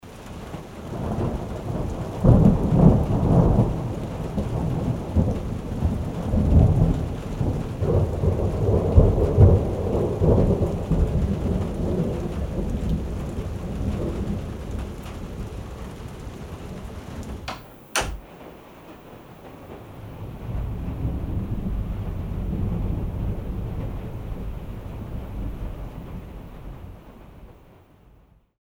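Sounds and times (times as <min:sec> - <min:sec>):
rain on a cabin: 0:00.0 - 0:28.4.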